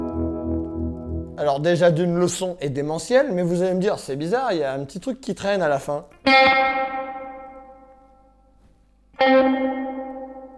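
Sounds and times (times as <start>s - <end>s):
electric guitar chords through a tremolo pedal with maximum reverb: 0.0s - 1.4s, 6.2s - 8.0s, 9.2s - 10.5s
speech: 1.4s - 7.0s.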